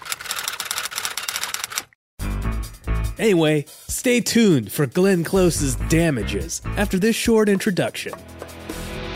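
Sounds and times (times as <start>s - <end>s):
typewriter clatter of sharp key strikes: 0.0s - 2.0s
speech: 3.2s - 8.4s.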